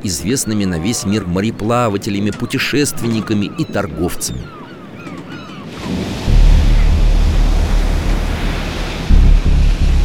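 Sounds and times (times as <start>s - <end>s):
speech: 0.0s - 4.6s
crashing sea waves: 0.0s - 10.0s
stormy wind roaring: 4.8s - 10.0s.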